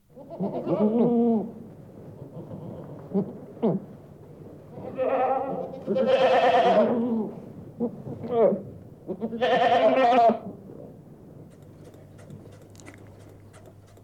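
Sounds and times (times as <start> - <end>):
goats bleating during milking: 0.2 - 1.3, 4.8 - 7.2, 9.1 - 10.4.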